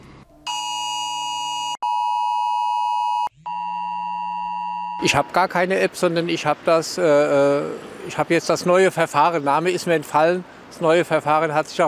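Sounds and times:
mobile phone emergency test alert tone in Rhineland-Palatinate Germany: 0.5s - 5.3s
speech: 5.0s - 11.8s.

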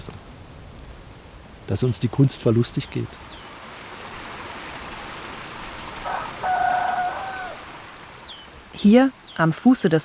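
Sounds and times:
speech: 1.7s - 3.3s, 8.8s - 10.0s
rooster-like crow: 6.0s - 7.8s.

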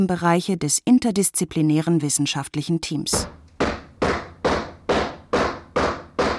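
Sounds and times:
speech: 0.0s - 3.4s
heavy booming knocks from a 1971 haunting case: 3.1s - 6.3s.

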